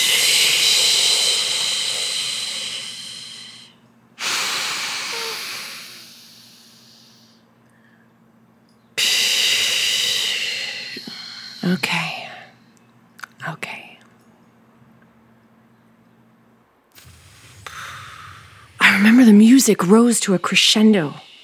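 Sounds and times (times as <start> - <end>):
long slow exhales during a breathing exercise: 0.0 - 8.0, 9.0 - 12.6, 17.0 - 19.3, 21.1 - 21.4
speech: 11.7 - 12.0, 19.6 - 21.3.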